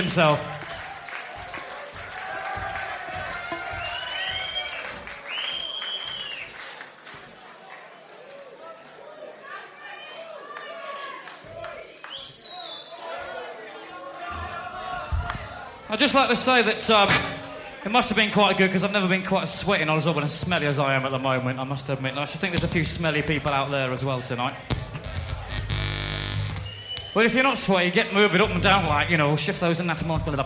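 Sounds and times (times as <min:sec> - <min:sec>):
speech: 0:00.0 - 0:00.6, 0:15.9 - 0:24.8, 0:27.2 - 0:30.4
large crowd applauding at a live concert: 0:00.0 - 0:09.7, 0:10.4 - 0:12.8
crowd cheering at a live concert: 0:00.0 - 0:18.2, 0:22.4 - 0:30.4
sharp whistles from a concert crowd: 0:03.8 - 0:06.5, 0:12.1 - 0:13.1, 0:26.6 - 0:27.2.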